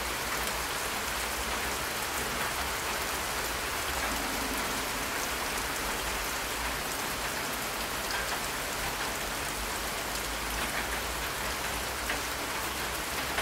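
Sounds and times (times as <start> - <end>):
steady rain striking surfaces: 0.0 - 13.4.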